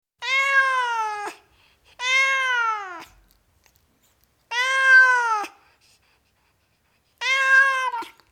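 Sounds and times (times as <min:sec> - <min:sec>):
tom cat meowing: 0:00.2 - 0:01.4, 0:02.0 - 0:03.2, 0:04.5 - 0:05.5, 0:07.2 - 0:08.2.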